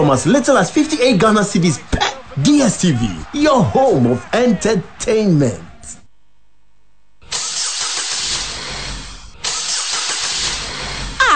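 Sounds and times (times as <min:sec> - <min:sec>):
speech: 0:00.1 - 0:05.7
car engine cranking with starter grinding: 0:07.4 - 0:10.9.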